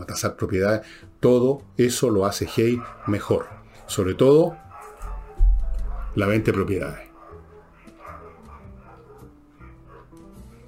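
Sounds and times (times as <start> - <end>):
speech: 0.1 - 4.6, 6.2 - 7.0
dogs barking: 2.2 - 10.6.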